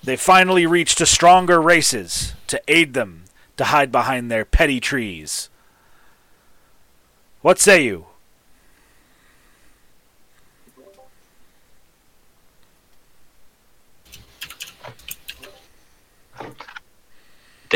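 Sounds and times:
speech: 0.0 - 5.5, 7.4 - 8.1
keyboard typing: 14.1 - 15.7.

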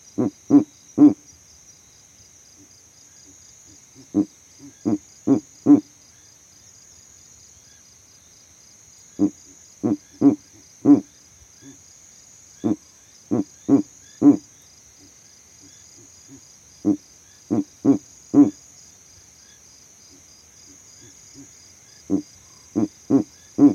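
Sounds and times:
male Verreaux's eagle owl giving deep grunting territorial hoots in savanna: 0.1 - 1.2, 4.0 - 5.9, 9.2 - 11.8, 12.6 - 15.1, 16.0 - 18.6, 20.1 - 23.7.

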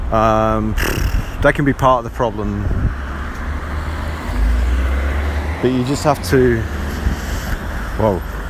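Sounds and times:
speech: 0.1 - 3.0, 5.6 - 6.7, 8.0 - 8.3
car rolling past with road rumble and tyre hiss: 2.9 - 8.0.

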